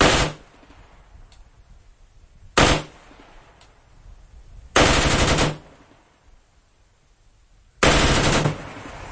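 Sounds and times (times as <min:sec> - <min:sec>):
rifle with bump stock firing short bursts: 0:00.0 - 0:00.5, 0:02.6 - 0:03.0, 0:04.8 - 0:05.7, 0:07.8 - 0:08.8.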